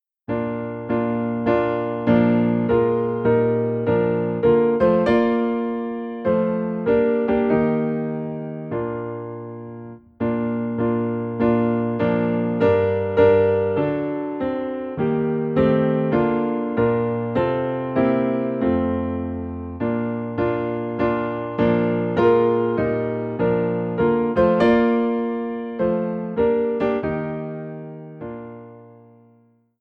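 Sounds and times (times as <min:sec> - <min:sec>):
piano in B flat: 0:00.0 - 0:29.7.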